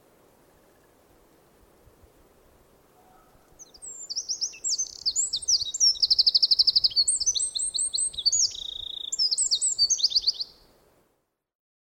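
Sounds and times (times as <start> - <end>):
Eurasian wren Troglodytes troglodytes song with trills and rattles: 3.0 - 10.8.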